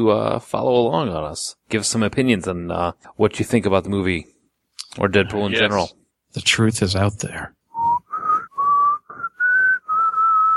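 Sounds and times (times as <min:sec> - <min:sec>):
speech: 0:00.0 - 0:07.9
person whistling a short tune: 0:07.7 - 0:10.5.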